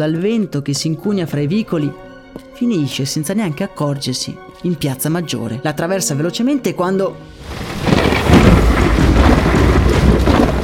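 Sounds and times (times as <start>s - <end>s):
speech: 0.0s - 8.4s
steady heavy rain on a stormy night: 7.3s - 10.6s
thunder rumbling over a town square on a stormy night: 7.3s - 10.6s.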